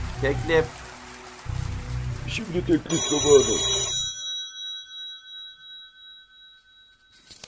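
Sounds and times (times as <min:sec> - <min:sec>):
speech: 0:00.2 - 0:00.8, 0:02.3 - 0:03.7
telephone ringing with pulsing trill: 0:02.8 - 0:07.3.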